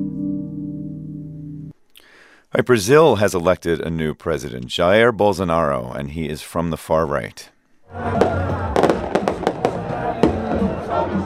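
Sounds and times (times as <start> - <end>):
speech: 2.5 - 8.3
outdoor crowd cheering at election victory celebrations in Rio de Janeiro: 7.9 - 11.2
celebratory fireworks bursts outside the president-elect's home in Rio de Janeiro: 8.2 - 10.9.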